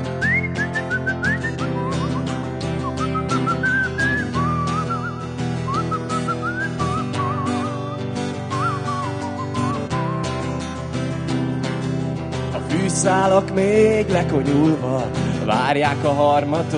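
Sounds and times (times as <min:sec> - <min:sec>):
steady instrumental backing music: 0:00.0 - 0:16.7
soft whistled tune of a song refrain: 0:00.2 - 0:10.4
speech: 0:13.1 - 0:16.7.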